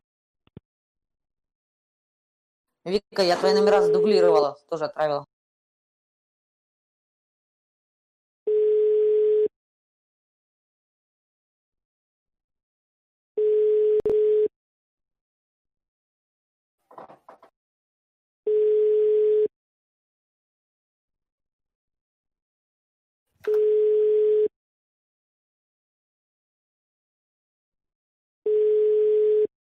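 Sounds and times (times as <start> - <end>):
speech: 2.8 - 5.3
ringback tone of an unanswered outgoing phone call: 3.6 - 4.4, 8.5 - 9.5, 13.4 - 14.5, 18.5 - 19.5, 23.5 - 24.5, 28.5 - 29.5.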